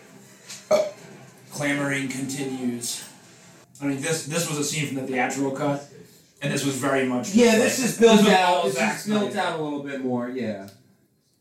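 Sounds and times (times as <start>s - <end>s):
single short throaty burp: 0.7s - 1.0s
speech: 1.6s - 3.1s, 3.8s - 10.8s.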